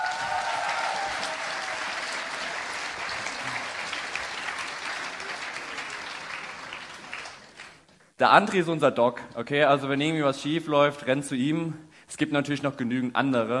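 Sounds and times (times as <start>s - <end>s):
audience applause: 0.0s - 7.9s
speech: 8.2s - 13.5s.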